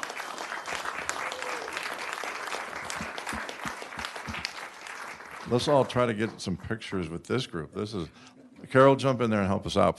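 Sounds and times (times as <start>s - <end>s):
audience applause for honored guests: 0.0s - 6.6s
speech: 5.5s - 9.9s.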